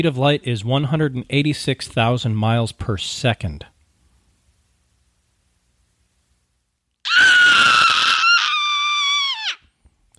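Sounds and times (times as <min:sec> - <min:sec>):
speech: 0:00.0 - 0:03.7
child screaming: 0:07.0 - 0:09.7.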